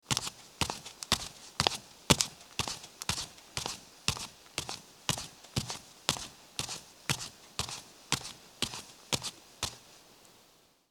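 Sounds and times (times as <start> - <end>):
barefoot footsteps going up: 0.0 - 9.9.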